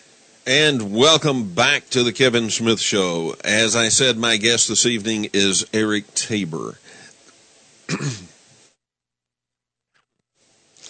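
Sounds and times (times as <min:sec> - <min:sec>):
hiss: 0:00.0 - 0:08.8, 0:10.3 - 0:10.8
speech: 0:00.5 - 0:07.0, 0:07.9 - 0:08.2
person coughing: 0:07.9 - 0:08.4.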